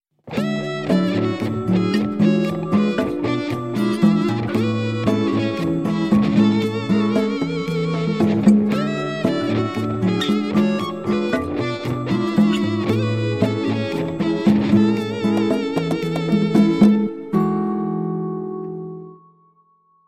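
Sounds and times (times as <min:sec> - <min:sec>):
Nokia latin ringtone: 0:00.4 - 0:18.3.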